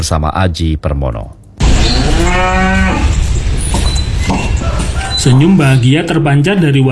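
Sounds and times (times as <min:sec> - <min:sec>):
speech: 0:00.0 - 0:03.2, 0:04.3 - 0:06.9
steady outdoor noise: 0:00.0 - 0:06.9
sacrificial cow mooing in Pleret, Bantul, Indonesia: 0:01.8 - 0:03.2.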